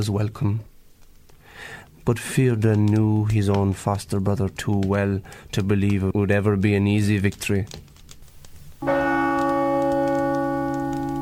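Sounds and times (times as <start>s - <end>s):
speech: 0.0s - 0.7s, 1.6s - 7.8s
battle gong struck: 8.8s - 11.2s.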